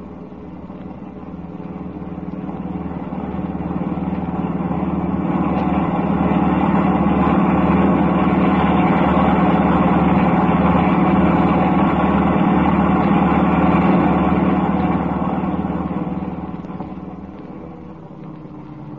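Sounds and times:
car engine droning while driving: 0.0s - 18.9s.

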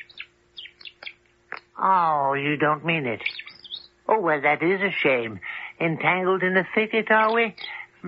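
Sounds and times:
small bird chirping: 0.0s - 1.8s, 2.8s - 4.2s, 6.9s - 8.0s
faint steady hum: 0.0s - 8.0s
speech: 1.8s - 3.4s, 4.1s - 8.0s.

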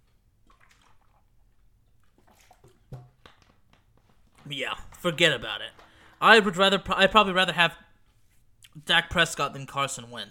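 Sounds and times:
person sipping and swallowing water: 0.0s - 6.2s
speech: 4.5s - 7.8s, 8.8s - 10.2s.

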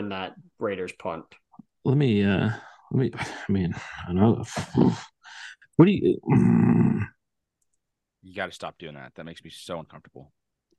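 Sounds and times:
speech: 0.1s - 7.2s, 8.2s - 10.4s
person growling like an animal into a microphone: 4.2s - 5.1s, 6.2s - 7.2s.

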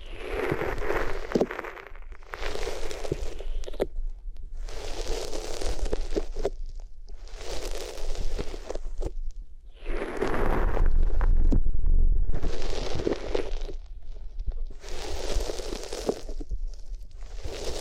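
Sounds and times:
crinkly papery rubbing strokes across the ears: 0.0s - 3.9s, 4.6s - 6.6s, 7.2s - 9.1s, 9.7s - 11.4s, 14.7s - 17.7s
dull low thumping: 10.3s - 14.8s.

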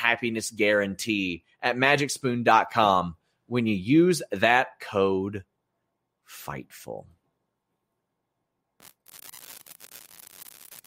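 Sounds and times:
speech: 0.1s - 5.5s, 6.3s - 7.2s
harsh crackling line static: 8.8s - 10.8s.

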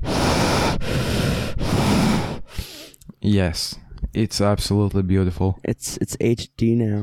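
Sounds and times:
heavy breathing against a new microphone: 0.0s - 3.0s
speech: 3.3s - 7.0s.

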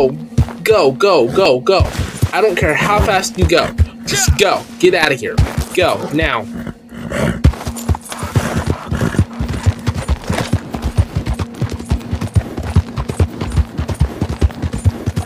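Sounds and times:
speech: 0.0s - 7.4s
constant low hum: 0.0s - 15.2s
galloping horse hoofbeats in a video game: 1.7s - 4.6s, 5.3s - 6.3s, 7.2s - 15.2s.

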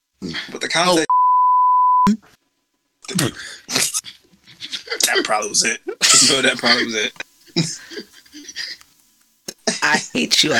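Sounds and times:
speech: 0.4s - 1.1s, 5.3s - 8.1s, 9.9s - 10.5s
censor bleep tone: 1.1s - 2.1s
laughter: 3.8s - 8.8s.

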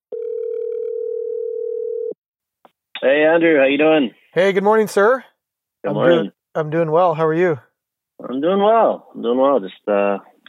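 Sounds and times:
telephone dial tone while calling someone: 0.1s - 2.2s
speech: 3.0s - 10.4s.

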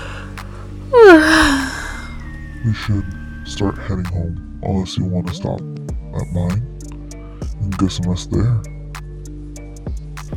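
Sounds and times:
person yawning: 1.0s - 2.1s
speech: 2.6s - 6.7s, 7.6s - 8.7s.

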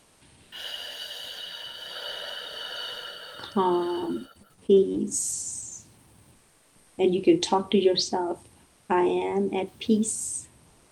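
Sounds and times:
slow exhale after holding breath: 0.6s - 4.5s
speech: 3.4s - 5.6s, 7.0s - 10.4s.

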